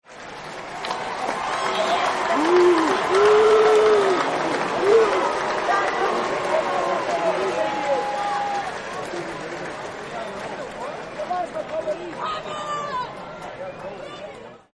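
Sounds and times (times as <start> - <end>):
unhappy crowd booing: 0.8 - 9.5.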